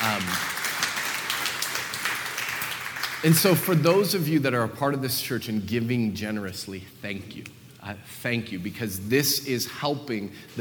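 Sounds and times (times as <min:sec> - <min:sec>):
church congregation clapping after a giving update: 0:00.0 - 0:04.3
speech: 0:03.2 - 0:10.5.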